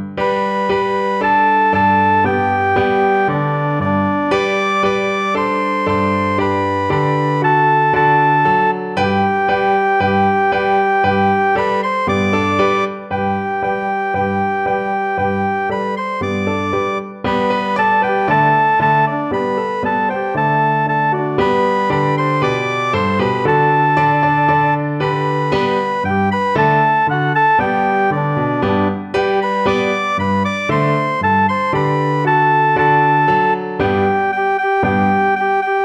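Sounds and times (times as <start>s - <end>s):
trumpet tune: 0.2s - 35.8s.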